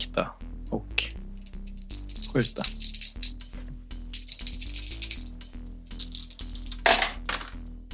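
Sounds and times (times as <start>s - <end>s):
speech: 0.1s - 0.8s, 2.4s - 2.8s
dice rattling across a hard table surface: 1.4s - 3.4s, 4.1s - 7.6s.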